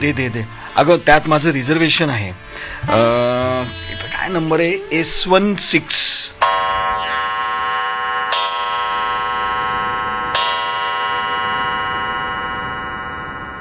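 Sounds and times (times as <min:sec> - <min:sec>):
speech: 0:00.0 - 0:06.2
clock chimes striking three: 0:06.4 - 0:13.5.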